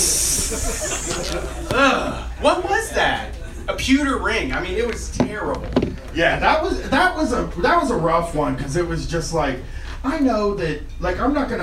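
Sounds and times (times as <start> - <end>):
person hissing like an angry cat into the mic: 0.0 - 2.3
laughter: 0.1 - 3.8
speech: 0.5 - 11.6.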